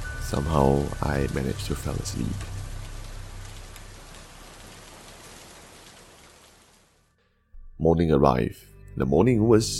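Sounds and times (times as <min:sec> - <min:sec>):
faint low rumble: 0:00.0 - 0:05.5
steady rain pattering on a surface: 0:00.0 - 0:07.1
speech: 0:00.3 - 0:02.5, 0:07.8 - 0:09.7.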